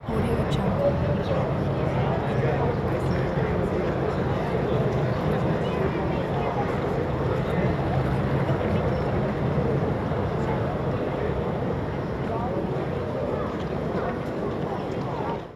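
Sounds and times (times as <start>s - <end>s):
busy city plaza ambience: 0.0s - 15.5s.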